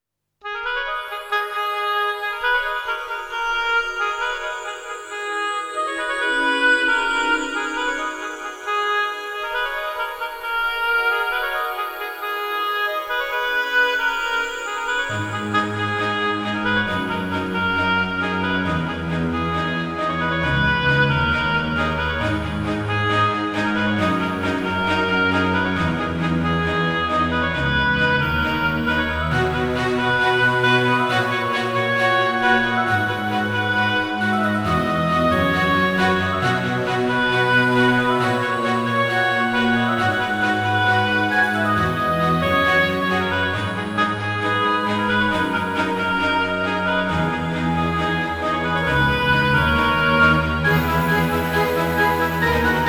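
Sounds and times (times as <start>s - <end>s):
oboe melody: 0.4s - 52.8s.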